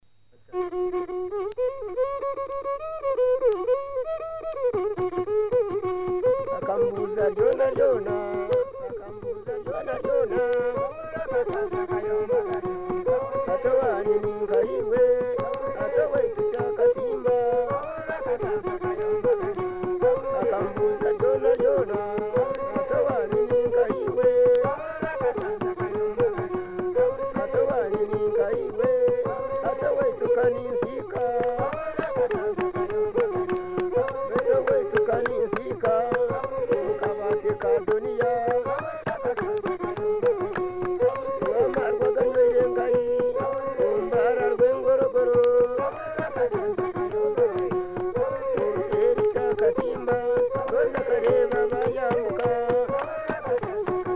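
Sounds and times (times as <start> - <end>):
endigiri fiddle playing in Uganda: 0.3 - 54.1.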